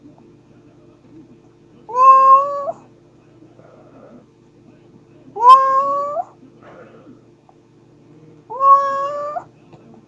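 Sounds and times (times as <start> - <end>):
quiet hum: 0.0 - 10.0
domestic pet cat meowing: 1.9 - 2.8, 5.4 - 6.3, 8.5 - 9.5.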